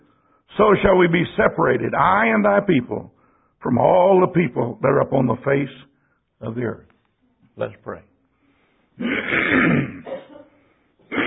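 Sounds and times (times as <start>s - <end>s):
speech: 0.6s - 6.9s, 7.6s - 8.1s, 9.0s - 10.2s
man clearing his throat: 9.0s - 11.2s.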